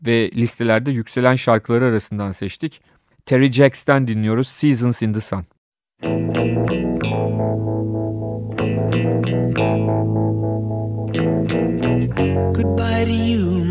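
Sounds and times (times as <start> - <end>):
speech: 0.0 - 13.6
bright chorus-tinged strummed chords in a 1974 pop song intro: 6.0 - 13.6.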